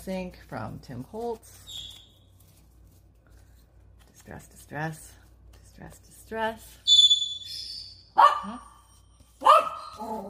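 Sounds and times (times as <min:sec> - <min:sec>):
speech: 0:00.0 - 0:01.9, 0:04.3 - 0:05.2, 0:05.8 - 0:06.9, 0:07.5 - 0:08.7, 0:10.0 - 0:10.2
male pet dog barking: 0:08.2 - 0:08.8, 0:09.4 - 0:10.2.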